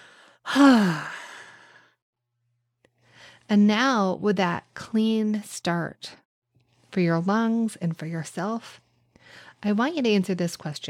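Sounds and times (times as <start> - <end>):
audible exhale voiced sigh: 0.0 - 2.0
speech: 0.5 - 1.1, 3.5 - 6.2, 6.9 - 10.8.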